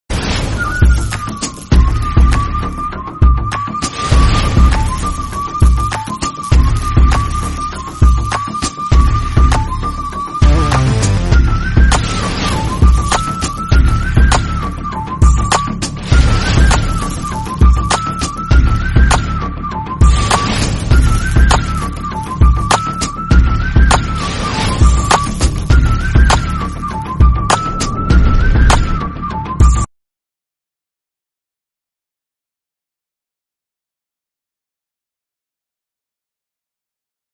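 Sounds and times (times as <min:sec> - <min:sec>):
flute background music: 0:00.2 - 0:29.9.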